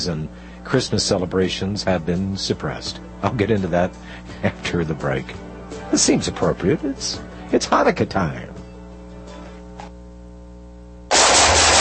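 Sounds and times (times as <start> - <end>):
speech: 0.0 - 8.5
steady low hum: 8.9 - 11.7
sustained burst of gunfire: 11.1 - 11.7.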